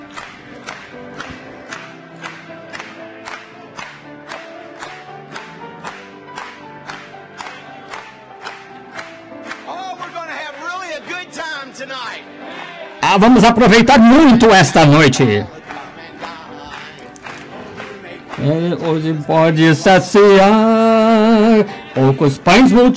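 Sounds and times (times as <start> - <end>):
crowd clapping a steady beat at a Christian worship gathering: 0.0 - 11.9, 14.0 - 22.9
people singing a hymn at a Christian worship gathering: 12.3 - 13.0, 15.4 - 22.2
speech: 13.0 - 15.6, 18.9 - 20.8, 21.6 - 22.9.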